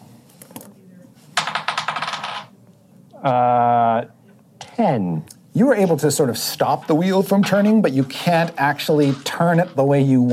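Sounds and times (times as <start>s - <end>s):
Friendship dice rattling and tumbling across a table: 1.4s - 2.5s, 6.7s - 10.3s
speech: 3.2s - 4.2s, 4.8s - 10.3s.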